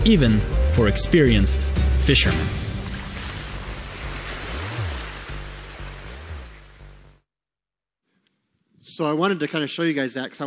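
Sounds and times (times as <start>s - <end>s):
speech: 0.0s - 2.6s, 9.0s - 10.4s
wind surging around a boat on the Sea of Galilee: 2.3s - 6.9s
rough sea waves around a boat on the Sea of Galilee: 2.4s - 6.6s.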